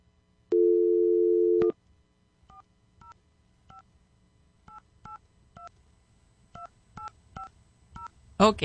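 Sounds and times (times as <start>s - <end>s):
telephone dial tone: 0.5s - 1.7s.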